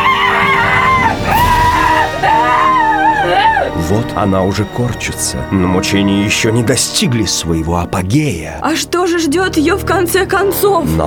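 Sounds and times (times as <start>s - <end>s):
policewoman screaming in a toilet: 0.0s - 3.8s
speech: 3.9s - 11.0s.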